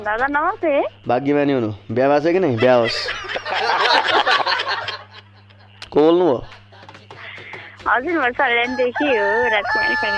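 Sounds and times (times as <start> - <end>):
speech: 0.0 - 5.0, 6.0 - 6.6, 7.8 - 10.1
laughter: 2.5 - 7.7
rooster crowing: 8.6 - 10.1.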